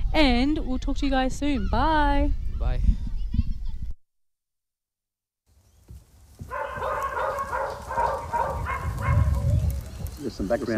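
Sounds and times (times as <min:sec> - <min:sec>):
speech: 0:00.1 - 0:03.1, 0:10.2 - 0:10.7
several dogs barking and yelping: 0:06.4 - 0:09.9.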